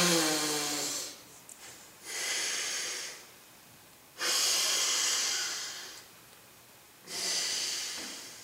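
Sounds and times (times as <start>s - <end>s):
alternate nostril pranayama breathing through the nose: 0.0s - 3.3s, 4.2s - 6.1s, 7.0s - 8.4s.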